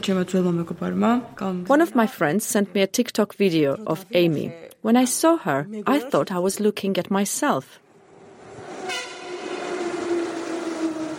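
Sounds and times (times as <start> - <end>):
speech: 0.0 - 7.8
train rumbling past at a train station: 7.9 - 11.1
sustained horn-like drone of a passing train: 8.1 - 11.1.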